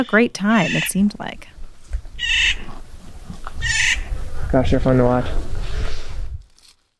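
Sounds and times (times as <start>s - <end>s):
speech: 0.0s - 1.5s, 4.5s - 5.5s
harsh buzzy bird calls among whitebark pine trees: 0.0s - 6.2s.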